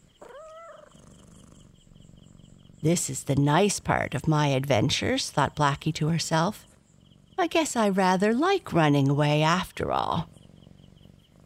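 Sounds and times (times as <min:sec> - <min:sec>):
cat purring contentedly while being stroked and having its ears rubbed: 0:00.0 - 0:11.4
cat short high tonal call: 0:00.2 - 0:01.0
speech: 0:02.8 - 0:06.7, 0:07.4 - 0:10.3.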